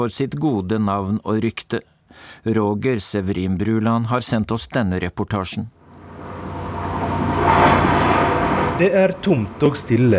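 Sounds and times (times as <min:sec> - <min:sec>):
speech: 0:00.0 - 0:05.8, 0:08.8 - 0:10.1
construction work renovating a hotel in Ischgl Austria: 0:05.8 - 0:10.1.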